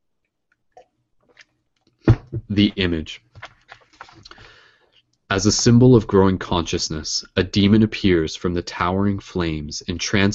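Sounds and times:
speech: 0:02.3 - 0:03.3, 0:05.3 - 0:10.3
person sipping and swallowing water: 0:03.4 - 0:05.0.

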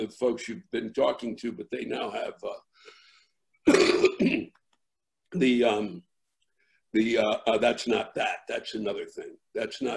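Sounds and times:
speech: 0:00.0 - 0:03.0, 0:03.6 - 0:04.6, 0:05.3 - 0:06.1, 0:06.9 - 0:09.9
person coughing and clearing their throat: 0:03.7 - 0:04.5.

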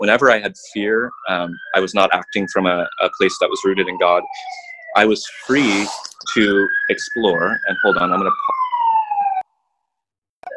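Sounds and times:
speech: 0:00.0 - 0:08.7
emergency vehicle sirens wailing outside: 0:00.0 - 0:09.4.

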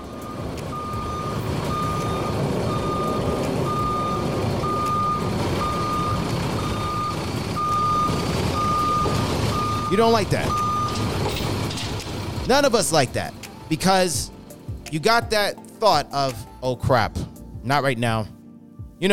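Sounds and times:
truck reversing alarm high-pitched beeps: 0:00.0 - 0:11.4
truck low engine rumble: 0:00.0 - 0:14.9
speech: 0:10.0 - 0:10.6, 0:12.5 - 0:14.3, 0:14.9 - 0:18.4.

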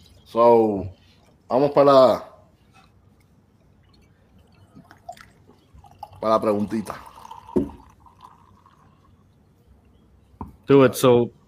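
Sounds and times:
speech: 0:00.3 - 0:02.3, 0:06.2 - 0:07.8, 0:10.7 - 0:11.4
beer pouring into a glass: 0:04.4 - 0:09.2.

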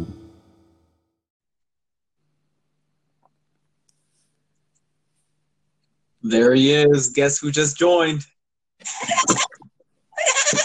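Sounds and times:
speech: 0:06.2 - 0:09.4
goat bleating: 0:10.2 - 0:10.6.

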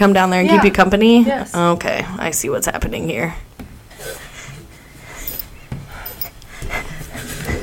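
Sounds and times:
speech: 0:00.0 - 0:03.5
heavy panting from someone out of breath while making dough in a home kitchen: 0:03.9 - 0:07.6.

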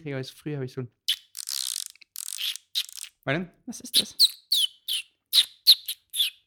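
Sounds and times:
speech: 0:00.0 - 0:01.1, 0:03.2 - 0:04.4
person whistling a bird imitation in short high chirps: 0:04.0 - 0:06.4.

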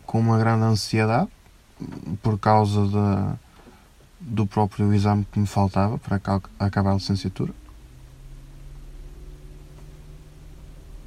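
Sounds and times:
speech: 0:00.1 - 0:03.5, 0:04.2 - 0:07.6
car cooling fan running over a low electric hum: 0:01.6 - 0:11.0.

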